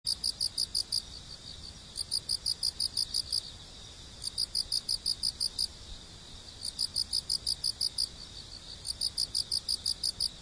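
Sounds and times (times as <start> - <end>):
Haraokame cricket chirping in high-pitched pulse trains: 0.1 - 10.3.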